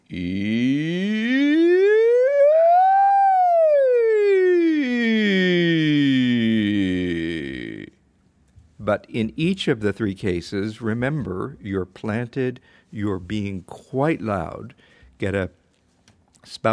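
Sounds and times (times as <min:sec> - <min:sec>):
speech: 0:00.1 - 0:00.5, 0:08.9 - 0:15.6, 0:16.4 - 0:16.7
person's voice imitating a siren: 0:00.1 - 0:08.0.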